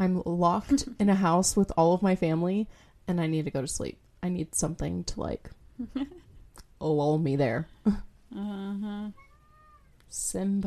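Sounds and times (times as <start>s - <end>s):
speech: 0.0s - 6.2s, 6.8s - 9.2s, 10.1s - 10.6s
faint room noise: 0.0s - 10.6s
cat meowing: 9.1s - 10.0s.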